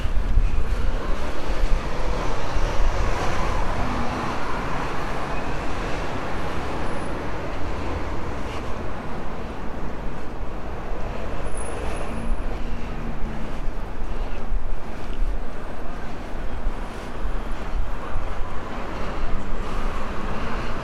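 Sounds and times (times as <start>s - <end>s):
cars driving around a roundabout: 0.0s - 20.8s.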